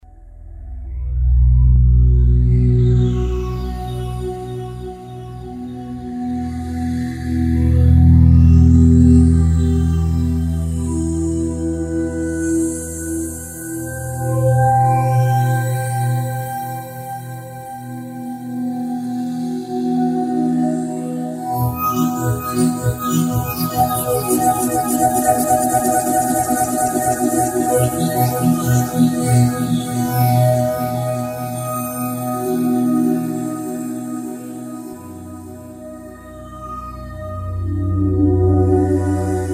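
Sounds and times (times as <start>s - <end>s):
Roland JD-990 synthesizer factory patch: 0.0s - 39.5s.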